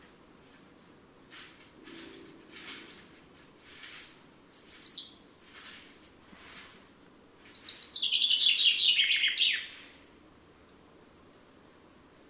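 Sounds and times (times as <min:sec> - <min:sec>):
common chaffinch singing, Fringilla coelebs: 0:04.5 - 0:05.9, 0:07.4 - 0:10.8.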